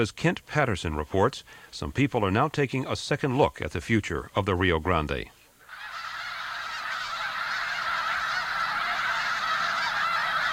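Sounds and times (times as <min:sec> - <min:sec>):
speech: 0:00.0 - 0:05.4
snow geese and sandhill cranes calling in huge flocks at the Bosque del Apache: 0:05.6 - 0:10.5.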